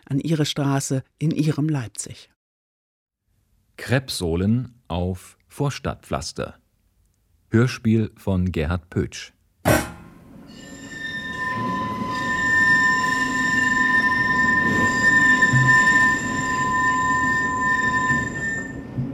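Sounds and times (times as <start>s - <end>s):
speech: 0.1s - 2.4s, 3.8s - 6.6s, 7.5s - 9.8s
tram squealing on rails along a Leipzig street: 10.4s - 19.1s.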